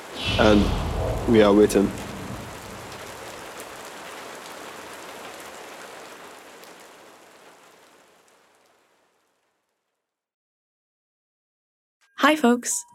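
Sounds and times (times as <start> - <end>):
steady rain falling: 0.0 - 9.8
speech: 0.4 - 2.0, 12.3 - 12.9.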